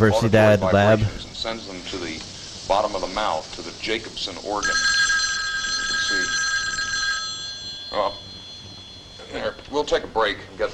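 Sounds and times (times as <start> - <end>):
speech: 0.0 - 5.0, 6.1 - 6.4, 7.9 - 8.3, 9.3 - 10.7
telephone ringing with a steady electronic tone: 4.6 - 10.1.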